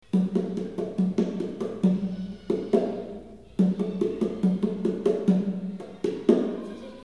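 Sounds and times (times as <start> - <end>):
bong and darbuka drumming: 0.0 - 6.7.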